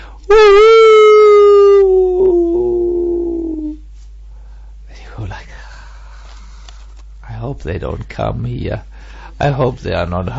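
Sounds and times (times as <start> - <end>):
jackal howling at dusk at Suryakund in India: 0.3 - 3.8
speech: 7.6 - 10.3.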